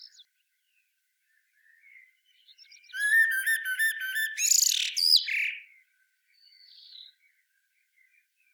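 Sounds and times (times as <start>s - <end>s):
Common blackbird phrase: 2.6s - 5.6s.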